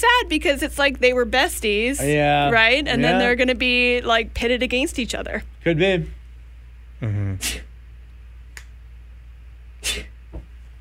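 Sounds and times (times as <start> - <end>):
speech: 0.0 - 6.2, 7.0 - 7.7, 9.8 - 10.1
person sneezing loudly: 7.0 - 7.7, 9.8 - 10.2.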